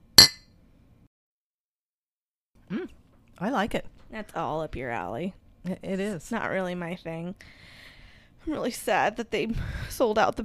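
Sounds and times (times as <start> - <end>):
glasses clinking in a toast over a whiskey cocktail: 0.2 - 0.4
speech: 3.4 - 7.8, 8.4 - 10.4.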